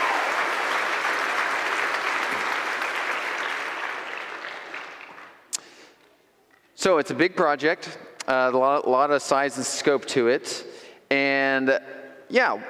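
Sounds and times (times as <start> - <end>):
audience applause: 0.0 - 5.5
speech: 6.8 - 12.6.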